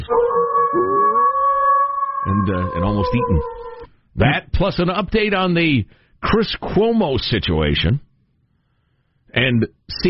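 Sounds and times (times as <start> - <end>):
wolves howling together: 0.0 - 3.9
speech: 2.5 - 8.0, 9.3 - 10.0.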